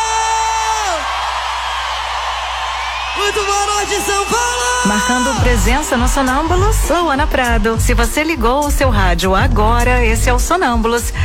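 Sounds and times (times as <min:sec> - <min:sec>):
long held whoop: 0:00.0 - 0:06.0
crowd cheering and yelling: 0:00.0 - 0:08.7
speech: 0:03.2 - 0:11.2.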